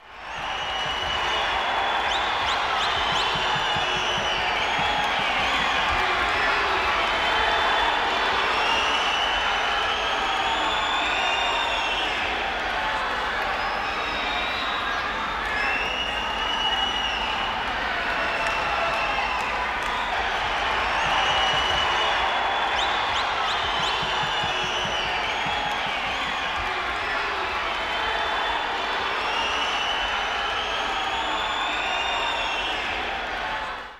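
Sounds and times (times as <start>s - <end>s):
stadium football crowd cheering: 0.0s - 33.9s.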